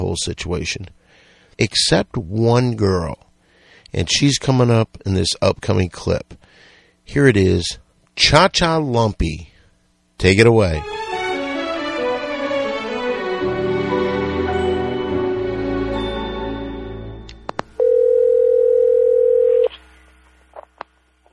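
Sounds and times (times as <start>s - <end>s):
speech: 0.1s - 3.3s, 3.9s - 9.5s, 10.2s - 11.0s
music: 10.8s - 17.7s
loud steady telephone dial tone after a call is cut off: 17.8s - 19.8s.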